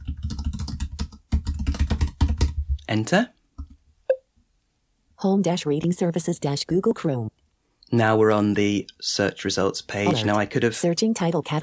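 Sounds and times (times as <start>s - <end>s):
typing on a computer keyboard: 0.0s - 2.8s
speech: 2.9s - 3.4s, 5.2s - 11.6s.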